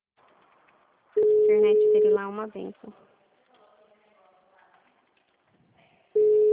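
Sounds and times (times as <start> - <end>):
telephone call tone while dialing a number: 1.2 - 2.2, 6.2 - 6.5
speech: 1.5 - 3.1.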